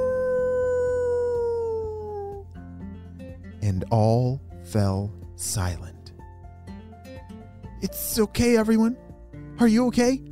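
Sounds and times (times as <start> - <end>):
wolf howling: 0.0 - 2.4
speech: 3.6 - 6.0, 7.8 - 9.0, 9.6 - 10.2.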